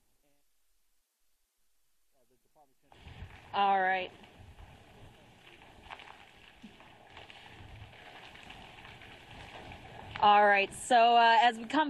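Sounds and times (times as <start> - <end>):
heavy rain hissing during a storm at Pensacola Beach: 2.9 - 11.8
low rumbling wind during a storm at Pensacola Beach: 2.9 - 11.8
speech: 3.6 - 4.2, 10.2 - 11.8.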